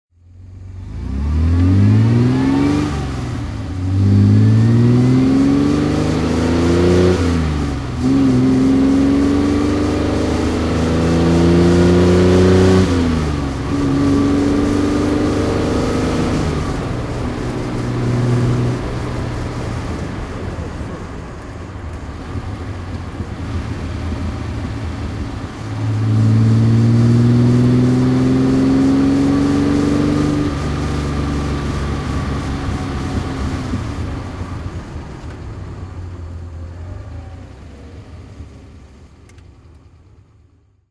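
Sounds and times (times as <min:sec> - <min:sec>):
Austin Healey 100 6 car engine on a rally drive: 0:00.1 - 0:40.8.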